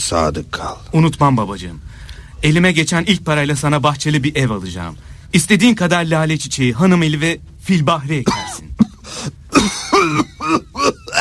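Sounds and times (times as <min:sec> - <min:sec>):
speech: 0:00.0 - 0:11.0
sick person coughing harshly: 0:08.2 - 0:11.2.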